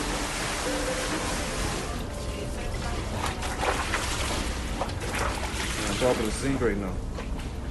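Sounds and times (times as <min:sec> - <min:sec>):
floodwater sloshing and splashing against window glass: 0:00.0 - 0:07.6
sharp floodwater slaps and knocks: 0:03.1 - 0:06.3
speech: 0:06.0 - 0:07.1.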